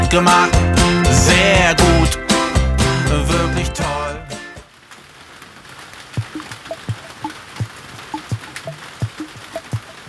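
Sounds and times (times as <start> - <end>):
speech: 0.2 - 0.7
rain falling with a soft hiss: 0.8 - 3.2, 4.6 - 10.0
plinking water drips: 6.2 - 10.0.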